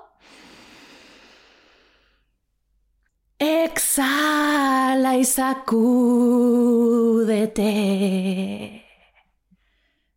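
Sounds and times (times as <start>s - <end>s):
deep inhalation in a balloon breathing exercise: 0.2s - 2.4s
speech: 4.0s - 8.8s.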